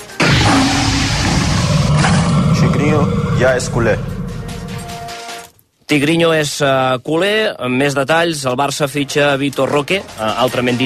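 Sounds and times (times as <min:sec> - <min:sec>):
tiger roar: 0:00.2 - 0:05.0
speech: 0:02.8 - 0:04.2, 0:05.9 - 0:10.8.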